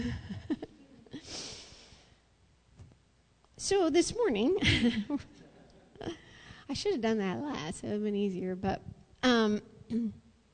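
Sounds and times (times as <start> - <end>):
deep breath inhale: 1.2 - 2.2
speech: 3.6 - 5.4, 6.0 - 10.2.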